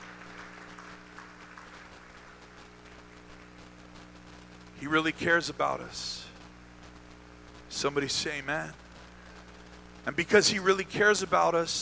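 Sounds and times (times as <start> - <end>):
audience clapping during a church sermon: 0.0 - 3.7
low electrical hum: 0.0 - 11.8
speech: 4.8 - 6.3, 7.8 - 8.8, 10.0 - 11.8.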